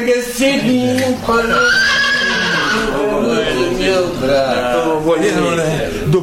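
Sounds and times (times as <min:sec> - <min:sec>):
speech: 0:00.0 - 0:02.0, 0:03.5 - 0:06.2
horse neighing: 0:01.4 - 0:03.1.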